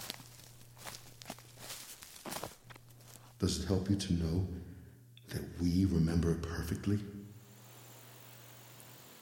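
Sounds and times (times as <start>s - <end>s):
quiet footsteps: 0.0s - 3.4s
speech: 3.4s - 4.7s, 5.3s - 7.2s.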